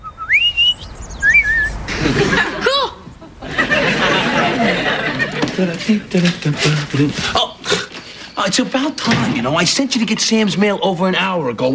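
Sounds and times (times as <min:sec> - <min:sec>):
bird singing bright sliding whistled chirps: 0:00.0 - 0:01.9, 0:07.4 - 0:11.7
noisy rustling background: 0:00.1 - 0:11.6
laughter: 0:01.9 - 0:08.0
speech: 0:05.6 - 0:07.5, 0:08.4 - 0:11.7.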